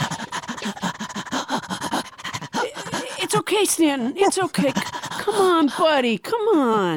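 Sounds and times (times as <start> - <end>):
man imitating an agitated dog panting: 0.0 - 5.7
speech: 3.3 - 6.9.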